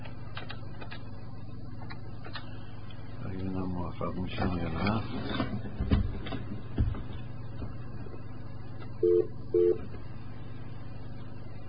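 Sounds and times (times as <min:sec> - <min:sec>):
low hum: 0:00.0 - 0:11.6
speech: 0:04.0 - 0:05.9
electronic telephone dialing tones: 0:09.0 - 0:09.8.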